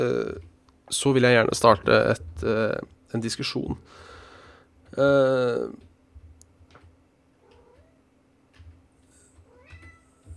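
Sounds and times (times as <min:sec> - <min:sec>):
speech: 0:00.0 - 0:04.1, 0:04.9 - 0:05.8
low steady hum: 0:00.0 - 0:10.3
cat meowing: 0:07.4 - 0:08.0, 0:09.5 - 0:10.3.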